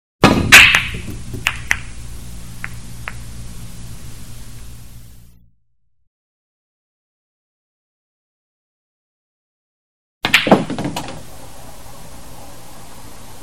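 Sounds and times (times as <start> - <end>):
ball being hit: 0.2 - 1.9, 10.2 - 11.3.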